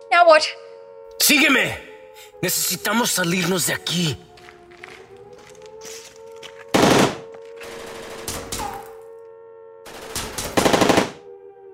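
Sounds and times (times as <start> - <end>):
speech: 0.2 - 0.6, 1.2 - 4.3
rapid automatic machine gun fire: 6.7 - 8.8, 9.9 - 11.2.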